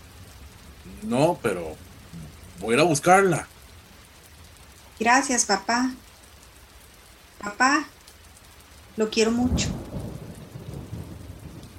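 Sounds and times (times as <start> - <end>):
deep rumble of thunder: 0.0 - 6.2, 7.3 - 11.7
steady heavy rain: 0.0 - 11.7
speech: 0.9 - 3.5, 5.0 - 6.0, 7.4 - 8.0, 9.0 - 9.8.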